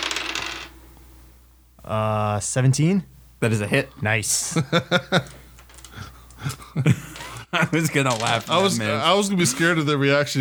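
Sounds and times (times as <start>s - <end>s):
dice clattering on a hard tabletop: 0.0s - 1.0s
speech: 1.9s - 5.4s, 6.4s - 10.4s.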